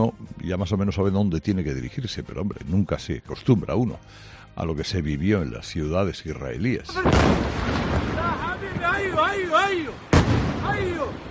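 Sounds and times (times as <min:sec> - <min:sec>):
speech: 0:00.0 - 0:11.2
explosion of an intercepted missile in Israel: 0:07.0 - 0:08.9, 0:10.0 - 0:11.2
people talking and calling out: 0:08.0 - 0:11.2.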